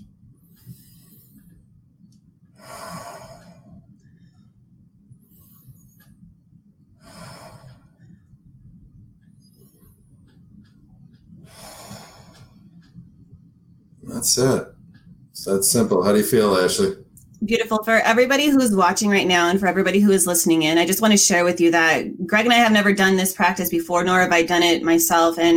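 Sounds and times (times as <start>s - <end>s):
low steady hum: 0.0s - 25.5s
deep breaths during a breathing exercise: 0.4s - 1.7s, 2.5s - 6.2s, 7.0s - 8.6s, 11.1s - 13.2s
speech: 14.2s - 14.7s, 15.5s - 25.5s.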